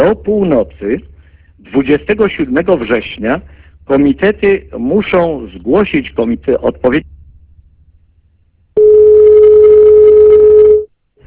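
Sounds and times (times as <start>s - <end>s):
speech: 0.1s - 7.1s
telephone line tone after a dropped call: 8.8s - 10.9s.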